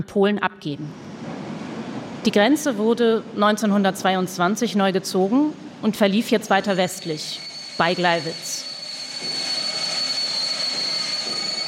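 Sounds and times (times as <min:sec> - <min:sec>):
speech: 0:00.0 - 0:01.3, 0:02.2 - 0:08.6
train wheels squealing on rails into a station: 0:06.3 - 0:11.6.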